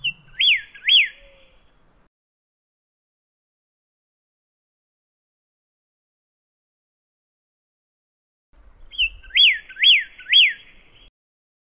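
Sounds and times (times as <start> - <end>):
pyrrhuloxia giving whistled notes: 0.0 - 1.7, 8.9 - 11.1.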